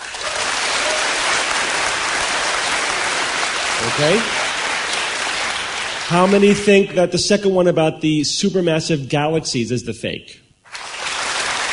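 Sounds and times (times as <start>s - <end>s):
crowd applauding: 0.0s - 6.8s, 10.7s - 11.7s
speech: 3.9s - 4.4s, 6.1s - 10.4s.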